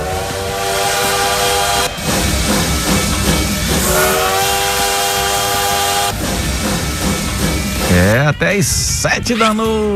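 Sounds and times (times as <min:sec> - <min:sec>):
loud train whistle blasts: 0:00.0 - 0:02.1, 0:03.8 - 0:06.2
steady rumble of rolling train: 0:00.0 - 0:09.9
speech: 0:08.2 - 0:09.9.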